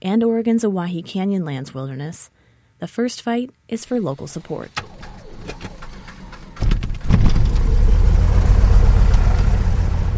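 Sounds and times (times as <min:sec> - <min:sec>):
speech: 0:00.0 - 0:05.7
small airplane propeller engine starting and running: 0:05.0 - 0:10.1.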